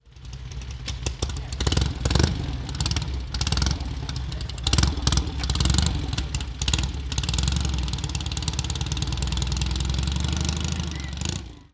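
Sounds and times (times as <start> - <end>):
Sunbeam S7a motorcycle: 0.0 - 11.7.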